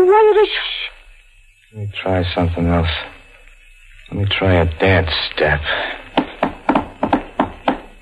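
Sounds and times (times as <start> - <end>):
speech: 0.2 - 1.0, 1.7 - 3.2, 4.1 - 6.0
hollow knocking on a wall from the next room: 6.1 - 7.9.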